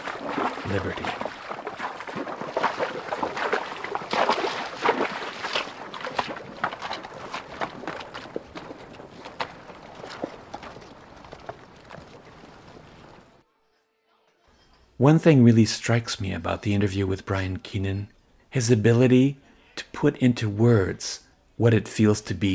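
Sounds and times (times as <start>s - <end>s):
horses' hooves splashing through a shallow mountain stream: 0.0s - 13.4s
speech: 0.7s - 1.2s, 15.0s - 19.4s, 20.0s - 22.5s.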